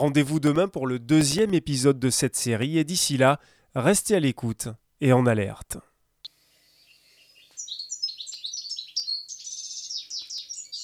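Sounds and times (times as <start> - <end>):
speech: 0.0 - 5.9
European goldfinch song with quick tinkling twitter of high liquid notes: 6.7 - 10.8.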